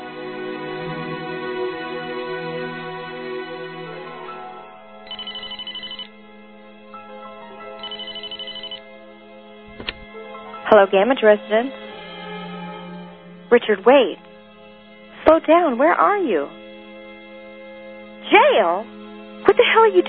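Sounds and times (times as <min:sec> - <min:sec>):
sustained tonal sound: 0:00.0 - 0:20.0
telephone ringing: 0:05.0 - 0:06.2, 0:07.6 - 0:08.9
speech: 0:10.7 - 0:11.8, 0:13.5 - 0:14.2, 0:15.3 - 0:16.6, 0:18.3 - 0:20.0.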